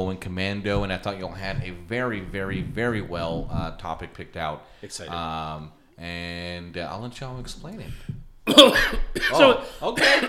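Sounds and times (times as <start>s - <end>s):
speech: 0.0s - 10.2s
person coughing: 8.5s - 10.2s.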